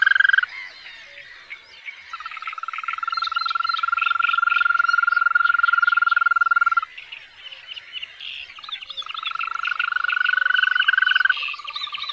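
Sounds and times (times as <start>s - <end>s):
European green toads trilling: 0.0s - 1.2s, 2.1s - 6.9s, 8.5s - 12.1s.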